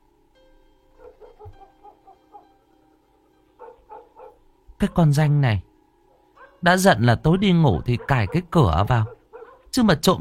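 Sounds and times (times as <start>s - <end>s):
dog barking with short yaps and whimpering yips: 1.0s - 2.8s, 3.5s - 5.0s, 6.1s - 6.6s, 7.8s - 9.8s
speech: 4.8s - 5.7s, 6.6s - 10.1s.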